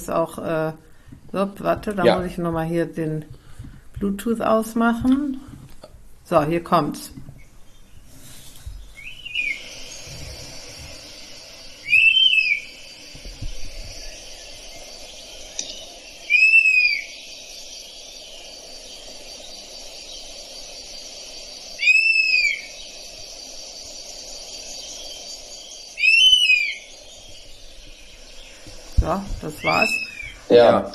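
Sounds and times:
speech: 0.0 - 3.4, 4.0 - 5.5, 6.3 - 7.3, 30.5 - 30.9
steady hiss: 0.0 - 30.9
played recording of European honey buzzard plaintive whistled calls: 8.8 - 30.5.

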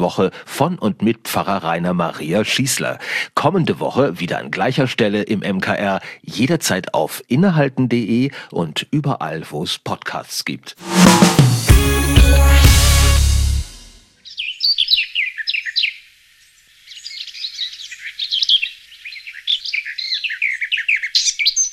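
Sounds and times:
speech: 0.0 - 12.6
brief musical chord: 10.8 - 14.0
chorus of morning birds chirping and twittering: 16.8 - 21.7.

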